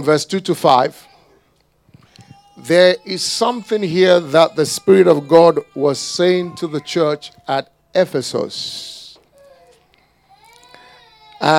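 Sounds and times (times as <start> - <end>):
speech: 0.0 - 1.1, 2.6 - 9.0, 11.4 - 11.5
child crying: 2.1 - 7.6, 9.2 - 11.5.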